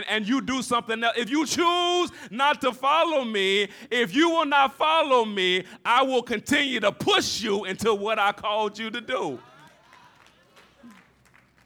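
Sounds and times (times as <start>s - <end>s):
speech: 0.0s - 9.5s
audience clapping: 9.3s - 11.6s.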